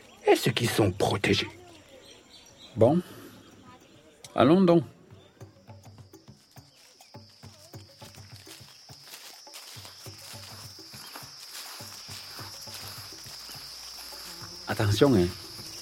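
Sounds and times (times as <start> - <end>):
speech: 0.3 - 1.6, 2.8 - 3.2, 4.4 - 5.0, 14.8 - 15.4
swarm of mosquitoes buzzing in a forest: 5.6 - 15.8
footsteps crunching: 5.7 - 15.8.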